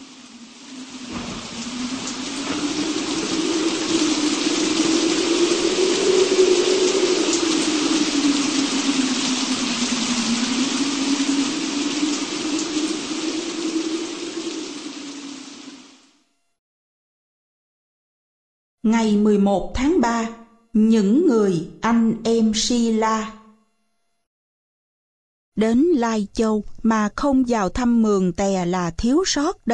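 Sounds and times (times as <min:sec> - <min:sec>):
low droning hum: 0:00.0 - 0:15.8
dense steady rain falling: 0:00.0 - 0:16.2
speech: 0:19.0 - 0:23.4, 0:25.6 - 0:29.7.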